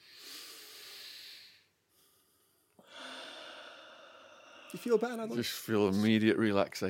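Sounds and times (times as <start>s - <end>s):
deep breath: 0.0s - 5.3s
speech: 4.7s - 6.8s.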